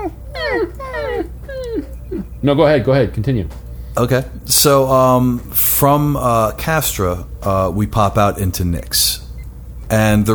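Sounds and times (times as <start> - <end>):
person imitating a whining family dog: 0.0 - 2.4
speech: 2.4 - 9.2, 9.9 - 10.3.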